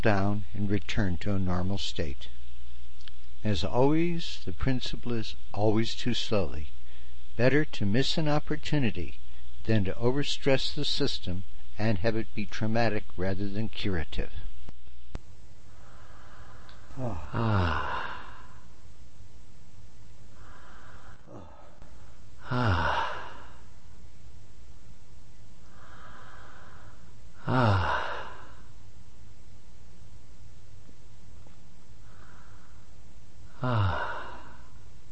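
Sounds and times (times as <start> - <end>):
speech: 0.0 - 2.4, 3.4 - 6.8, 7.4 - 14.4, 17.0 - 18.1, 22.5 - 23.1, 27.4 - 28.0, 33.6 - 34.1
slow deep breathing: 15.6 - 18.8, 20.2 - 23.9, 25.6 - 28.8, 31.4 - 35.0.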